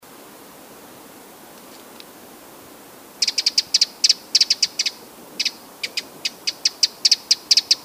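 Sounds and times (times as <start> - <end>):
Eurasian wren Troglodytes troglodytes sharp high ticking calls: 3.2 - 7.8.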